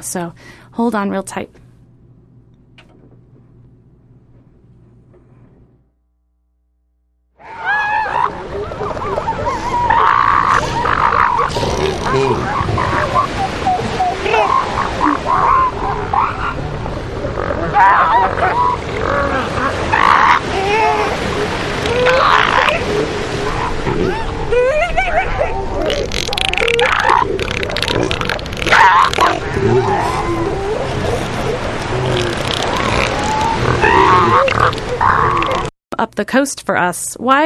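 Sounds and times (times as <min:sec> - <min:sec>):
speech: 0:00.0 - 0:01.6, 0:17.8 - 0:18.8, 0:36.0 - 0:37.4
elephant seal colony bellowing and grunting at a coastal headland: 0:07.4 - 0:35.7.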